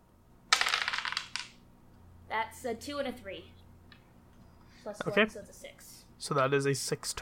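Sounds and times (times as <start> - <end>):
two six-sided dice clattering onto a hard surface: 0.5 - 1.6
speech: 2.3 - 3.6, 4.8 - 7.2.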